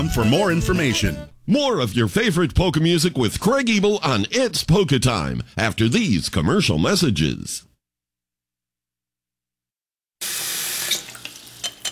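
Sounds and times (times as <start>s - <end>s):
speech: 0.0s - 7.7s
water running from a sink tap: 10.2s - 11.9s.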